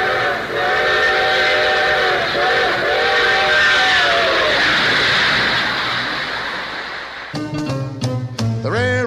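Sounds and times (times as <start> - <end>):
train whistle blowing: 0.0 - 4.6
passing train rumbling: 0.0 - 8.6.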